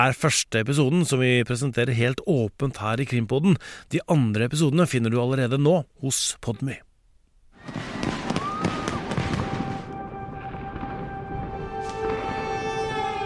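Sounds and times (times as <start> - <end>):
speech: 0.0 - 6.9
fireworks exploding over a city: 7.6 - 13.2
popping: 7.6 - 13.2.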